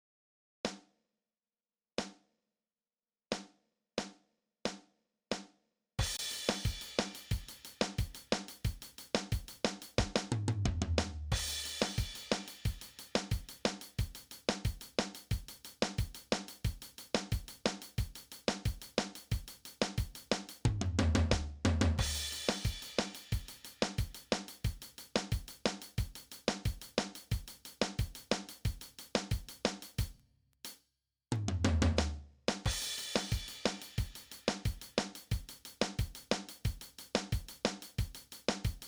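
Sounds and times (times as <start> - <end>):
drum kit: 6.0 - 30.2, 31.4 - 38.8.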